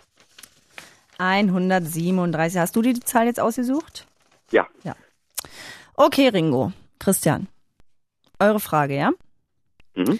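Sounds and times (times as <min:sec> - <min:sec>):
book pages being flipped: 0:00.0 - 0:05.4
speech: 0:01.2 - 0:07.5, 0:08.4 - 0:09.2, 0:10.0 - 0:10.1.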